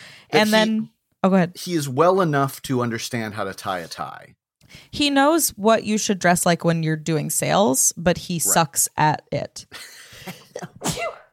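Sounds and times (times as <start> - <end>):
short intake of breath: 0.0 - 0.3
speech: 0.3 - 11.2
sneeze: 10.8 - 11.3.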